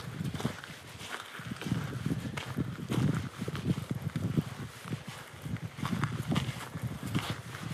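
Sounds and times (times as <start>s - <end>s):
footsteps crunching through partly melted snow: 0.0s - 7.7s.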